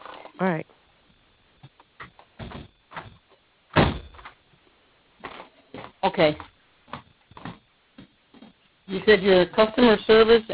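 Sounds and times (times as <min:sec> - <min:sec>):
speech: 0:00.4 - 0:00.8, 0:06.2 - 0:06.5, 0:09.1 - 0:10.5
door being pulled shut with a thud: 0:02.4 - 0:04.3.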